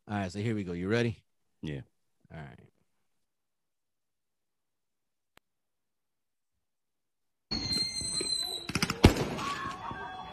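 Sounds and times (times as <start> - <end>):
speech: 0.1 - 2.7
firework high whistling tone: 7.5 - 10.3.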